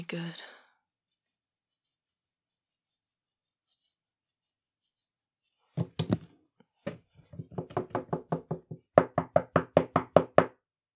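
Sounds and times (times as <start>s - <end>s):
speech: 0.0s - 0.6s
knocking on a bathroom door: 5.8s - 6.3s, 6.9s - 10.6s.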